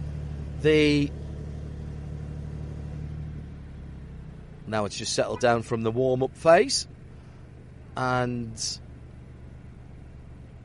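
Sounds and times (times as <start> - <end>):
loud rev from a sporty car exhaust: 0.0 - 7.9
car engine rumbling low and steady: 0.0 - 10.6
speech: 0.6 - 1.2, 4.7 - 6.9, 8.0 - 8.8.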